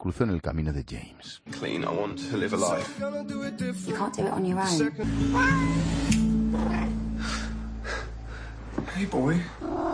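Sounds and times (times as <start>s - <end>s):
speech: 0.0s - 7.4s, 8.8s - 9.9s
cat meowing: 5.2s - 7.0s.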